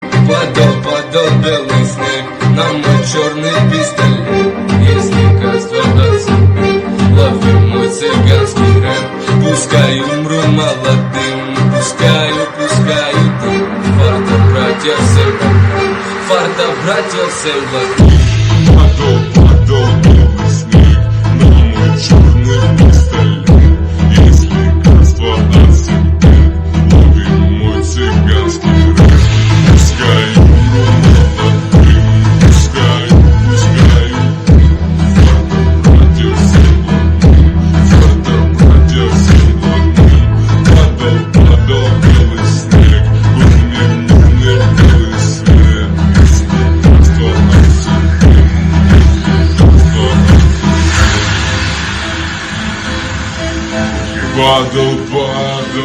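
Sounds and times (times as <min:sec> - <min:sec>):
slow bass remix: 0:00.0 - 0:55.8.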